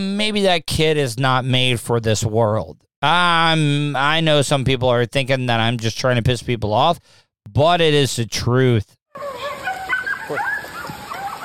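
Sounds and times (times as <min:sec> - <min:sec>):
speech: 0:00.0 - 0:09.5
coyotes howling and yipping at night in Hingham: 0:09.2 - 0:11.4.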